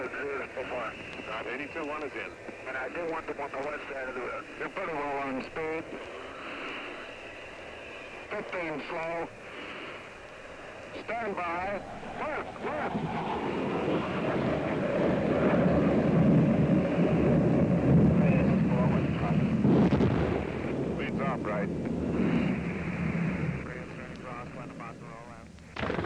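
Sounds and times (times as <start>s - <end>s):
helicopter gunship rotor and engine roar: 0.0s - 26.0s
speech: 0.2s - 6.2s, 8.3s - 9.4s, 11.0s - 14.4s
rapid bursts of gunfire from helicopter gunship: 25.8s - 26.0s.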